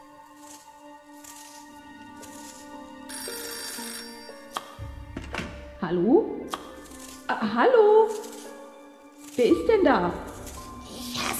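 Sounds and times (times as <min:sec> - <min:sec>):
telephone ringing with an electronic trill: 0:03.1 - 0:04.4
speech: 0:05.8 - 0:06.5, 0:07.3 - 0:08.2, 0:09.4 - 0:10.3.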